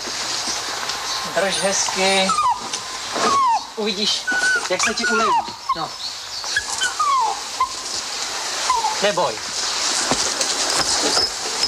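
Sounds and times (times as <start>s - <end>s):
steady hiss: 0.0s - 11.6s
speech: 1.3s - 2.5s, 3.2s - 6.1s, 9.0s - 9.5s
dog whimpering while being treated for fleas: 2.1s - 6.0s, 6.6s - 7.8s, 8.7s - 9.0s.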